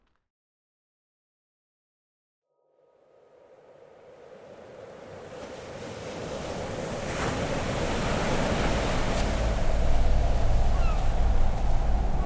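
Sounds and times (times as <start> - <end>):
low wind rumble: 2.8 - 12.2
surf washing against the shore of an empty beach: 3.5 - 12.2.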